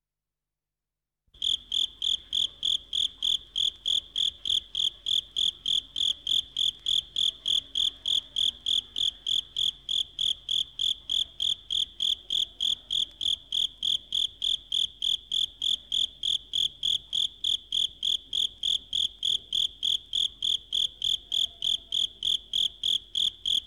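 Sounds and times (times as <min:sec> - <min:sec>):
insect: 0:01.4 - 0:23.6.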